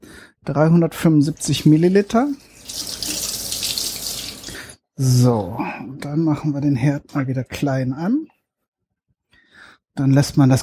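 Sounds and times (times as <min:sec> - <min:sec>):
speech: 0:00.4 - 0:03.0, 0:05.0 - 0:08.3, 0:10.0 - 0:10.6
water pouring into a cooking pot: 0:01.5 - 0:04.8.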